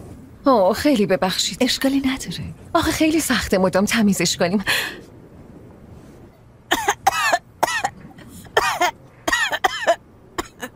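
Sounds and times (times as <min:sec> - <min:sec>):
speech: 0:00.4 - 0:05.1
person coughing: 0:06.7 - 0:10.7.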